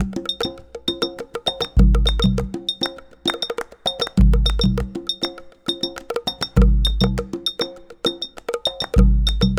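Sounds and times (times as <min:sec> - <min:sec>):
semba percussion loop: 0:00.0 - 0:09.5.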